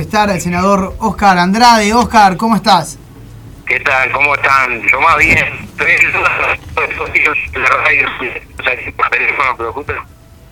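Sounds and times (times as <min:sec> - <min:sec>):
speech: 0:00.1 - 0:03.0, 0:03.7 - 0:10.2
voice speaking over a thin band-limited remote line: 0:03.7 - 0:10.0.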